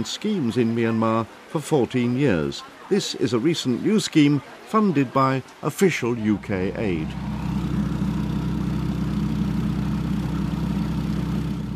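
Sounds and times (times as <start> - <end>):
speech: 0.0 - 7.4
boat engine running on a trip to a village in the Irrawaddy Delta: 6.1 - 11.7.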